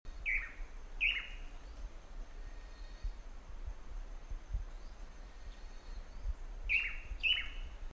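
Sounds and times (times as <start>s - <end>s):
Chiroxiphia caudata chi-voo call in Mbaracayú Forest Reserve: 0.1s - 3.2s, 4.7s - 7.8s.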